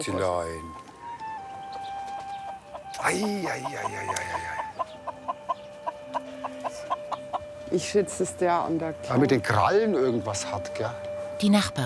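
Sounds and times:
speech: 0:00.0 - 0:00.9, 0:03.0 - 0:04.6, 0:07.7 - 0:11.8
limping chicken with a suspected broken leg clucking: 0:02.2 - 0:07.5.

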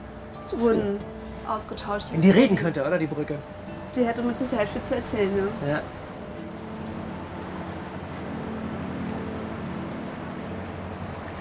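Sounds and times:
boat engine drone cruising across the Templiner See lake near Potsdam: 0:00.0 - 0:11.4
speech: 0:00.5 - 0:06.0
rushing water from a boat cruising across the Templiner See lake: 0:02.2 - 0:11.4.

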